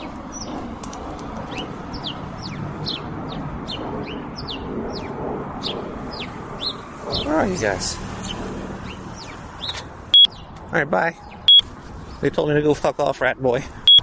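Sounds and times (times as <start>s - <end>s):
flock of birds clucking and chattering: 0.0s - 12.3s
short high bird chirps and calls: 1.5s - 7.3s, 8.2s - 10.5s
speech: 7.4s - 8.0s, 10.8s - 11.3s, 12.2s - 13.8s.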